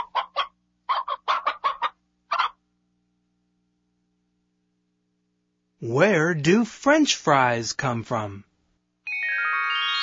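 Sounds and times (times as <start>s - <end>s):
chicken clucking: 0.0s - 2.6s
speech: 5.8s - 8.5s.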